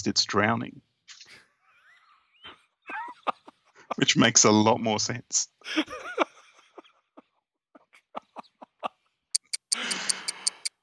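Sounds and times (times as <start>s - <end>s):
speech: 0.0s - 0.8s, 4.0s - 6.3s
laughter: 1.3s - 9.1s, 9.8s - 10.4s
loud clock ticking: 9.4s - 10.8s.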